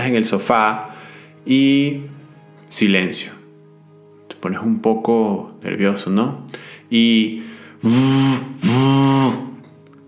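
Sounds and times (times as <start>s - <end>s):
speech: 0.0s - 3.4s, 4.4s - 9.5s
mobile phone vibrating with a rattling buzz: 7.8s - 9.6s.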